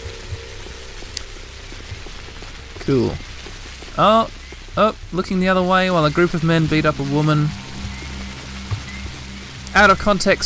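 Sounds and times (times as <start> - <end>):
rain falling in a video game: 0.0 - 10.4
speech: 2.9 - 3.3, 4.0 - 7.6, 9.8 - 10.4.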